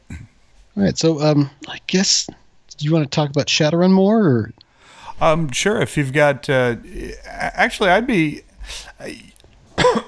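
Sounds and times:
person clearing throat: 0:00.0 - 0:00.3, 0:09.8 - 0:10.0
person coughing: 0:00.0 - 0:00.3, 0:09.8 - 0:10.0
speech: 0:00.8 - 0:04.6, 0:05.2 - 0:10.0.

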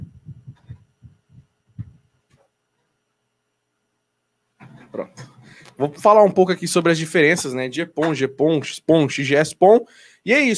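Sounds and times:
low thumps and knocks of an electric fan being turned away: 0:00.0 - 0:02.4
speech: 0:05.8 - 0:10.5.

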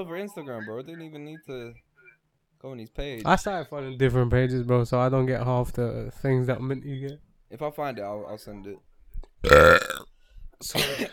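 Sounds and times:
speech: 0:00.0 - 0:01.9, 0:02.6 - 0:09.9, 0:10.6 - 0:11.1
loud burps into a microphone as a mic test: 0:09.4 - 0:10.0.

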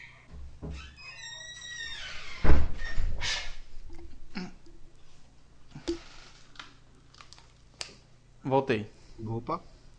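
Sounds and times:
door squealing on its hinges and swinging shut with a thud: 0:00.3 - 0:03.4
speech: 0:08.5 - 0:09.7.

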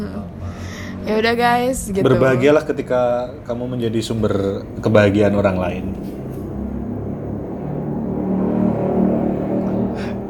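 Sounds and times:
loud modified motorcycle engine revving: 0:00.9 - 0:10.2
speech: 0:01.1 - 0:06.2.

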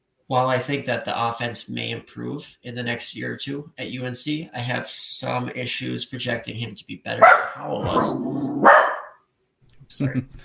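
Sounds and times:
speech: 0:00.3 - 0:08.9, 0:09.9 - 0:10.4
puppy barking: 0:07.2 - 0:09.2.

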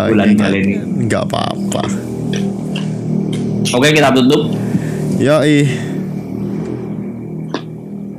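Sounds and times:
speech: 0:00.0 - 0:02.4, 0:03.6 - 0:04.6, 0:05.2 - 0:05.9
motorcycle engine droning and revving outside at night: 0:00.0 - 0:08.1.

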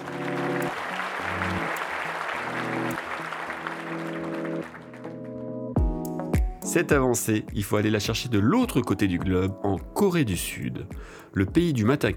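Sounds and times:
crowd applauding: 0:00.0 - 0:05.4
upbeat music: 0:00.0 - 0:12.1
speech: 0:06.8 - 0:12.1.

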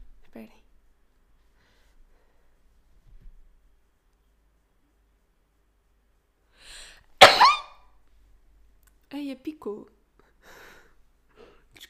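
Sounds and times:
speech: 0:00.4 - 0:00.7, 0:09.3 - 0:10.0
sneeze: 0:07.2 - 0:07.8.

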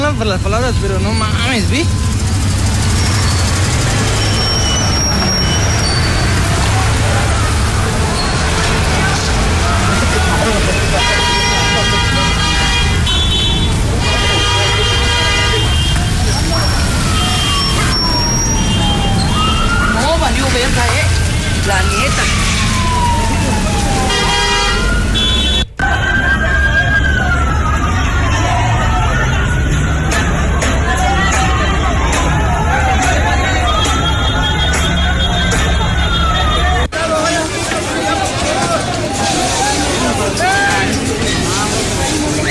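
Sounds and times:
busy street noise: 0:00.0 - 0:42.5
police patrol car sirens wailing: 0:00.0 - 0:42.5
speech: 0:00.2 - 0:02.1
murmuring crowd: 0:01.0 - 0:25.1, 0:25.8 - 0:42.5
honking horns in busy street: 0:02.0 - 0:19.0, 0:24.0 - 0:25.8, 0:33.3 - 0:36.9.

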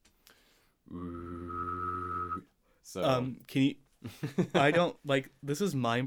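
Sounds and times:
person humming a low buzzing hum: 0:00.9 - 0:02.4
person whistling a steady high whistle: 0:01.1 - 0:02.5
speech: 0:02.9 - 0:06.0.

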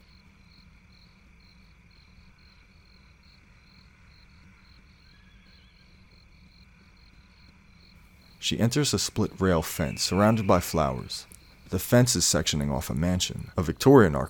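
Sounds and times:
crickets chirping at night: 0:00.0 - 0:14.2
speech: 0:08.4 - 0:14.2.

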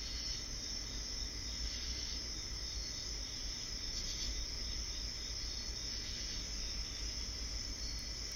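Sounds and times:
cicadas and crickets chirping at night among trees: 0:00.0 - 0:08.3
low hum: 0:00.0 - 0:08.3.

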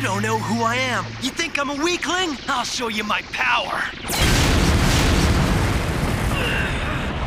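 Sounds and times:
speech: 0:00.2 - 0:04.4
bombs exploding and blowing apart a shield: 0:04.1 - 0:07.2.

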